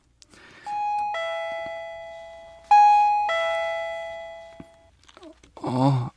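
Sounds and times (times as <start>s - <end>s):
house doorbell two-note ding-dong chime: 0.7s - 4.9s.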